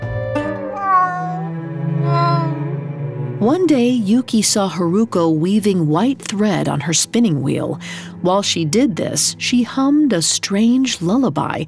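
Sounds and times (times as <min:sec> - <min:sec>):
cat meowing: 0:00.6 - 0:02.7
speech: 0:03.4 - 0:11.6.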